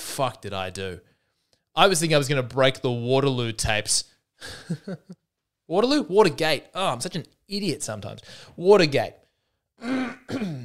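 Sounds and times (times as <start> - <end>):
speech: 0.2 - 1.1, 1.8 - 9.2, 9.8 - 10.6
person clearing throat: 9.8 - 10.6.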